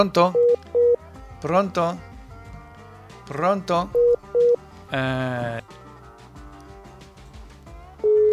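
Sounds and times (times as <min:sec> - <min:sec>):
speech: 0:00.0 - 0:00.4, 0:01.4 - 0:02.1, 0:03.3 - 0:04.0, 0:04.9 - 0:05.7
busy tone beep after a dropped phone call: 0:00.3 - 0:01.0, 0:03.9 - 0:04.6.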